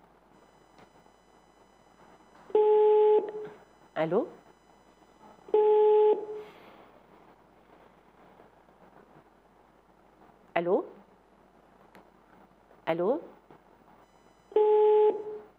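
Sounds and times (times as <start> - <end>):
telephone busy tone after a call disconnects: 0.4 - 6.4, 14.0 - 15.5
speech: 4.0 - 4.4, 12.9 - 13.4.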